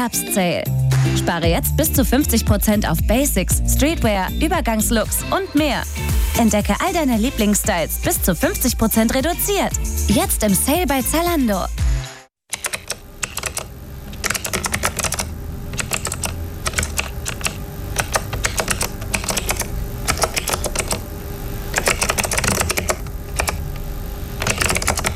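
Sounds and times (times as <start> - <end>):
speech: 0.0 - 11.8
typing on a computer keyboard: 12.5 - 21.0, 21.7 - 23.6, 24.4 - 25.1.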